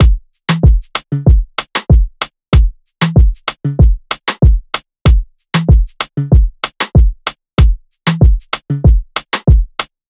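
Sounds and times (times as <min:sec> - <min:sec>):
Afrobeats drum loop at 95 BPM: 0:00.0 - 0:10.0.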